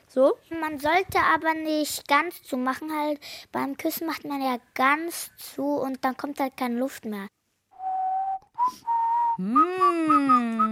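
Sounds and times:
speech: 0.2s - 7.4s, 8.7s - 10.6s
person whistling through pursed lips: 7.8s - 10.6s.

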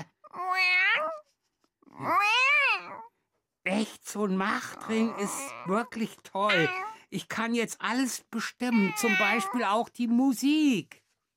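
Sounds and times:
person imitating whiny cat meows: 0.0s - 1.2s, 4.6s - 7.0s, 8.6s - 9.8s
speech: 3.8s - 11.0s.

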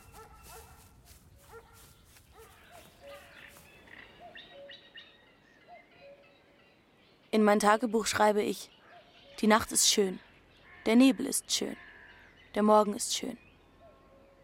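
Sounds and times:
birds chirping and tweeting: 0.0s - 14.4s
large German shepherd barking while racing toward a person at a fence: 0.1s - 0.9s, 1.5s - 3.4s
speech: 7.4s - 8.8s, 9.4s - 11.9s, 12.5s - 13.4s.

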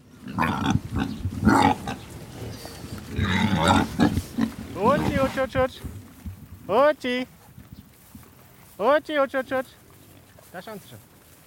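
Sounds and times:
pigs grunting and snorting: 0.0s - 6.2s
pig squealing bursts: 0.2s - 2.0s, 3.2s - 5.4s
speech: 0.3s - 1.6s, 5.4s - 6.0s, 6.7s - 7.4s, 8.8s - 9.8s, 10.5s - 11.1s.

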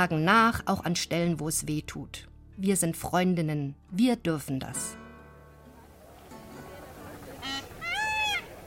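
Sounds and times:
speech: 0.0s - 5.0s
peacock screaming: 7.4s - 8.6s.

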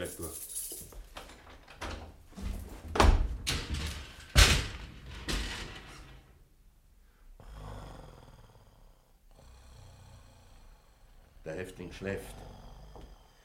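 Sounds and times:
prison cell door being unlocked and swung open: 1.2s - 6.3s
speech: 11.6s - 12.5s.

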